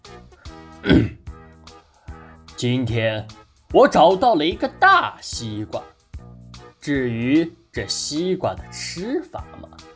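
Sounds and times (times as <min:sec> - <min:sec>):
speech: 0:00.8 - 0:01.2, 0:02.6 - 0:05.9, 0:06.8 - 0:09.8
storyteller's voice imitating a monkey clearing its throat: 0:00.8 - 0:01.3.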